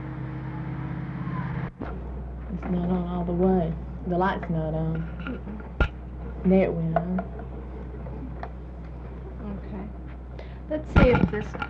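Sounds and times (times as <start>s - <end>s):
cars driving past outside in Dalton, Georgia: 0.0s - 4.0s
speech: 2.7s - 5.8s, 6.4s - 7.6s, 10.7s - 11.6s.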